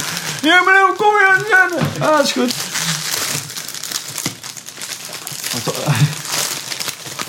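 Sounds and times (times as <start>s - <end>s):
plastic pastry wrapper being opened: 0.0s - 7.2s
speech: 0.4s - 3.0s, 5.6s - 6.2s.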